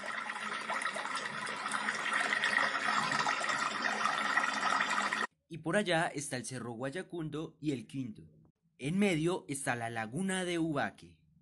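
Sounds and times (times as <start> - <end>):
stream water flowing: 0.0 - 5.3
speech: 5.6 - 11.2.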